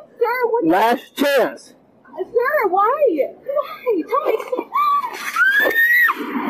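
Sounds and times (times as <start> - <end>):
speech: 0.6 - 6.4
laughter: 3.5 - 6.4
woman screaming in distress after being pepper-sprayed during an arrest: 4.7 - 6.3.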